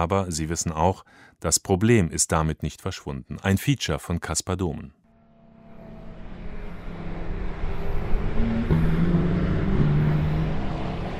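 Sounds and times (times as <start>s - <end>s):
speech: 0.0s - 5.0s
Porsche sports cars lapping a race track through tight corners: 5.0s - 11.1s.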